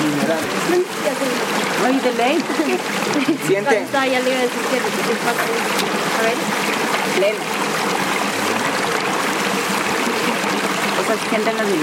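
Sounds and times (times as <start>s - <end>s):
cold mineral-rich sparkling water pouring: 0.0s - 11.8s
speech: 1.9s - 7.6s, 11.1s - 11.8s.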